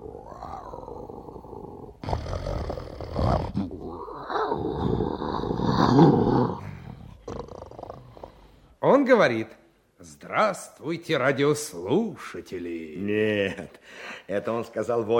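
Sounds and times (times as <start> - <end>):
lion roaring and growling: 0.0 - 8.1
speech: 9.1 - 15.1.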